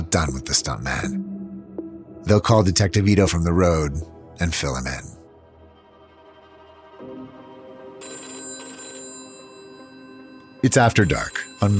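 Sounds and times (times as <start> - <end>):
speech: 0.1 - 1.2, 2.2 - 5.2, 10.6 - 11.7
desk phone with trilling electronic bell ringing in a homicide squad room: 7.7 - 11.7.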